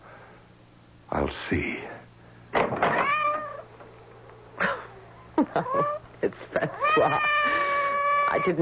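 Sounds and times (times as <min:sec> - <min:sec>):
speech: 0:01.3 - 0:01.9, 0:05.5 - 0:07.5, 0:08.3 - 0:08.6
cat meowing at the front door: 0:02.9 - 0:03.7, 0:06.7 - 0:08.6.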